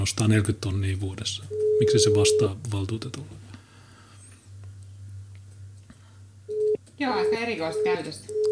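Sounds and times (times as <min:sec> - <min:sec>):
speech: 0:00.0 - 0:03.4, 0:07.0 - 0:08.5
low steady hum: 0:00.0 - 0:08.5
short clear telephone tone: 0:01.5 - 0:02.5, 0:06.5 - 0:08.5.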